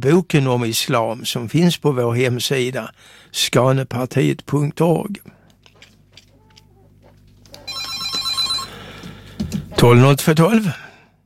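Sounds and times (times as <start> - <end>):
speech: 0.0 - 5.4, 9.8 - 10.8
telephone bell ringing: 7.6 - 8.8.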